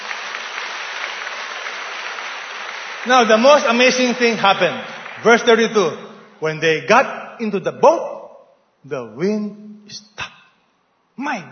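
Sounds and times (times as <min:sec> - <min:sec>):
audience clapping in appreciation during a sermon: 0:00.0 - 0:06.4
speech: 0:03.0 - 0:08.1, 0:08.8 - 0:10.2, 0:11.2 - 0:11.4.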